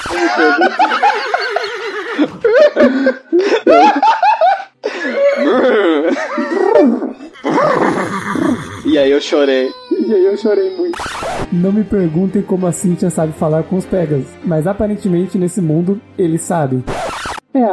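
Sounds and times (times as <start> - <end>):
laughter: 0.0 - 8.4
speech: 0.3 - 1.3, 9.3 - 9.8, 10.4 - 17.7
person imitating a horse neighing: 5.3 - 11.0.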